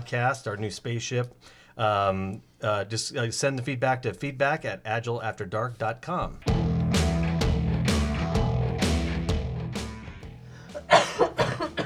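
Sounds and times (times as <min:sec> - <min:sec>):
speech: 0:00.0 - 0:06.6
music with steady beats: 0:06.4 - 0:11.8
person coughing: 0:10.7 - 0:11.8.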